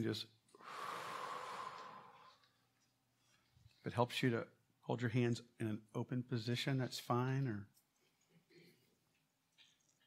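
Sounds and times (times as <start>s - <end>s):
speech: 0.0s - 0.9s, 3.8s - 7.8s
deep exaggerated breath drawn in during a guided breathing exercise: 0.6s - 2.5s.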